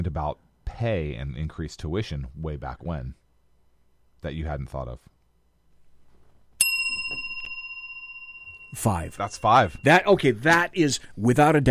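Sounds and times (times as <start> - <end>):
speech: 0.0 - 3.2, 4.2 - 5.2, 8.7 - 11.6
faint noise: 0.0 - 11.6
single bell struck sharply and ringing: 6.6 - 10.7.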